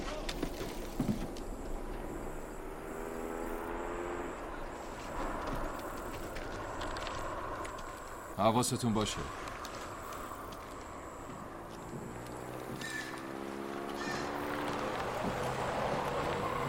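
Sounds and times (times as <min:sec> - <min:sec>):
approaching car engine rumble with a rising drone: 0:00.0 - 0:16.6
constant wash of outdoor noise: 0:00.0 - 0:16.6
speech: 0:08.4 - 0:09.4.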